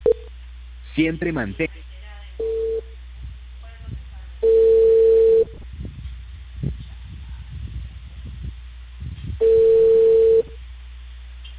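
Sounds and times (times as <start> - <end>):
speech: 1.0 - 1.8
long steady mid-pitched telephone ringing tones while a call connects: 2.4 - 2.9, 4.4 - 5.6, 9.4 - 10.6
short telephone beep while a call connects: 4.4 - 5.6, 9.4 - 10.6.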